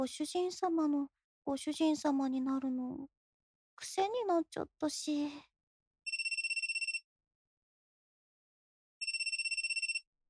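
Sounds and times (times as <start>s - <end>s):
speech: 0.0s - 3.2s, 3.8s - 5.5s
phone ringtone for an incoming call trilling with an electronic warble: 9.0s - 10.0s.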